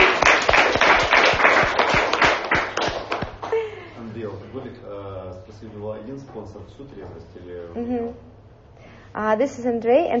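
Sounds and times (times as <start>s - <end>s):
audience applause at a talk with a question-and-answer session: 0.0s - 3.5s
speech: 5.6s - 8.4s, 9.2s - 10.1s.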